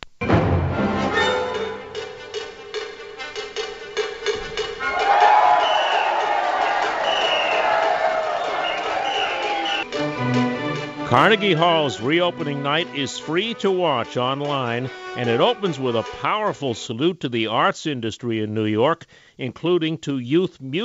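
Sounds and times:
pots and pans being banged: 1.0s - 4.9s
large audience cheering and applauding: 4.7s - 10.6s
speech: 11.1s - 20.8s.

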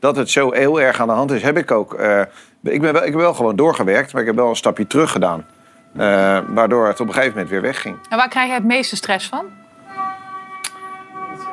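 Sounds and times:
speech: 0.0s - 9.6s
passing train horn blast: 4.6s - 11.5s.

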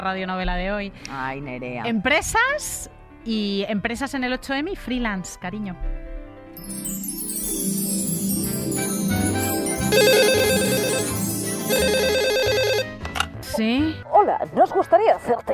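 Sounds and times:
speech: 0.0s - 6.0s, 6.6s - 7.1s, 13.6s - 15.5s
busy music: 0.0s - 15.5s
telephone ringing with a bright electronic ringtone: 9.1s - 13.0s.

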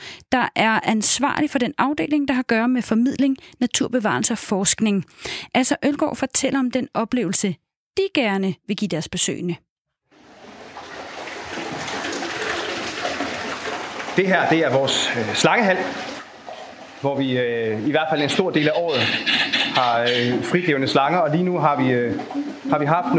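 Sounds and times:
speech: 0.3s - 9.7s, 14.2s - 16.1s, 17.0s - 23.1s
noisy airy ambience: 10.2s - 23.1s
low hooting calls of trumpeter birds: 18.0s - 23.1s.

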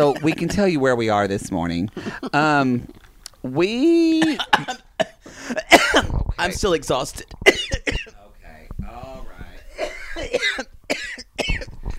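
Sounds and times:
fit of harsh chesty coughing: 0.0s - 0.6s, 4.1s - 6.3s, 7.4s - 8.3s, 9.7s - 11.9s
speech: 0.0s - 4.8s, 5.5s - 7.8s.

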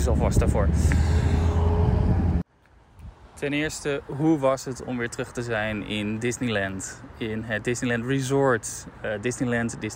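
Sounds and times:
speech: 0.0s - 1.4s, 3.4s - 9.9s
car passing on a street in Honolulu: 0.0s - 2.4s.

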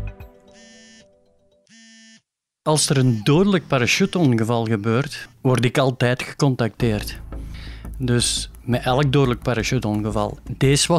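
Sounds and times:
telephone ringing in buzzing bursts: 0.5s - 2.3s
speech: 2.6s - 7.2s, 8.0s - 10.9s.

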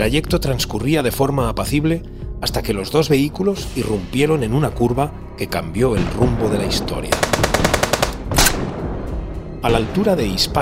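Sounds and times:
speech: 0.0s - 7.8s, 9.6s - 10.6s
submachine gun fire from armed men ambushing cars on a road: 7.1s - 8.7s.

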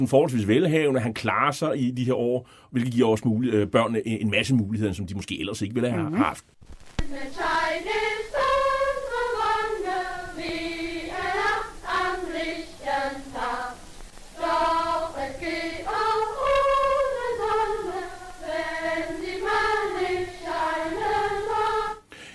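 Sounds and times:
speech: 0.0s - 8.1s
group of girls singing a marching song in unison: 7.0s - 22.1s.

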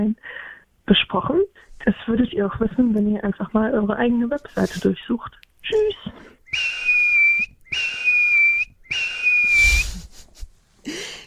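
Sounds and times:
speech: 0.0s - 6.7s
soft breathy human whistling: 6.4s - 10.0s.

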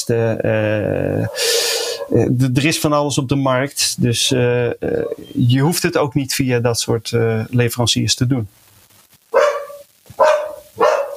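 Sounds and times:
speech: 0.1s - 1.5s, 2.1s - 8.7s
dog barking: 1.2s - 2.2s, 9.4s - 11.1s.

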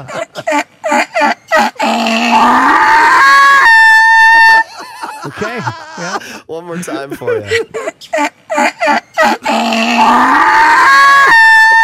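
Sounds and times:
laughter: 0.0s - 1.8s, 4.6s - 9.5s
speech: 0.0s - 2.6s, 6.6s - 9.0s
person imitating a donkey bray: 0.8s - 4.6s, 8.5s - 11.8s.

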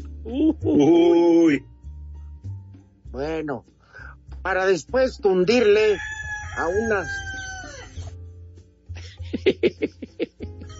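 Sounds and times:
speech: 0.2s - 1.7s, 3.1s - 3.8s, 4.4s - 7.3s, 9.4s - 10.5s
rooster crowing: 5.6s - 8.2s
laughter: 9.0s - 10.7s.

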